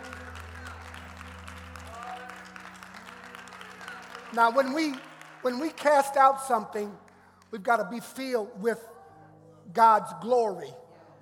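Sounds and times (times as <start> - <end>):
sustained low musical drone: 0.0 - 7.0
audience clapping during worship: 0.0 - 8.1
speech: 4.3 - 8.9, 9.7 - 11.2.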